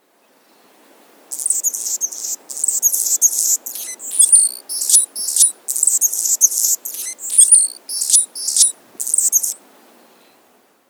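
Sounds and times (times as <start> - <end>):
Anna's hummingbird song: 1.3 - 9.6.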